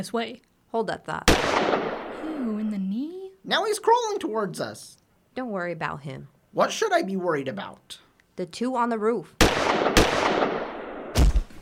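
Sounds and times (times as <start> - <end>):
speech: 0.0 - 9.9
steady low hiss: 0.0 - 11.6
gunshots in a gun battle with several attackers: 1.3 - 2.3, 9.4 - 11.5.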